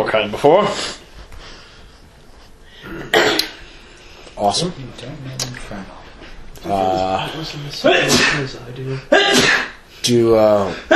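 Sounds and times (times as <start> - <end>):
speech: 0.1 - 1.0, 4.4 - 6.0, 6.6 - 10.9
person sneezing sharply: 2.9 - 3.6, 7.8 - 8.5, 9.1 - 9.8.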